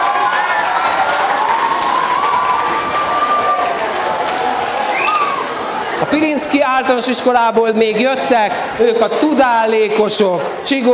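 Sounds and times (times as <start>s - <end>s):
large audience applauding: 0.0s - 6.1s
scattered cheers: 0.0s - 6.1s
voices mixed in with applause: 0.0s - 10.9s
speech: 6.1s - 10.9s.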